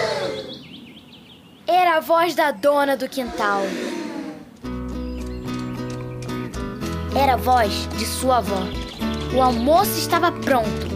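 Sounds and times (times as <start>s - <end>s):
speech: 2.0s - 4.0s, 7.2s - 10.9s
horse trotting on a street, hooves clip-clopping: 4.8s - 10.0s.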